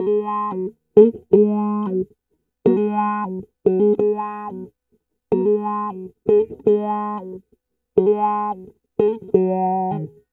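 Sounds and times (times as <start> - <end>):
East Coast hip hop wah guitar line in Ab major: 0.0 - 2.0, 2.7 - 4.7, 5.3 - 7.4, 8.0 - 10.2.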